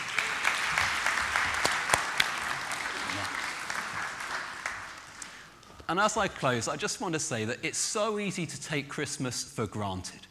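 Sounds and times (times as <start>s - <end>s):
room full of people applauding: 0.0s - 5.6s
speech: 5.9s - 10.2s.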